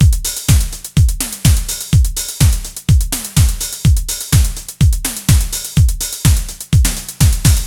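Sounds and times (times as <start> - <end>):
fast neo-wave pop rock drum beat: 0.0 - 7.6.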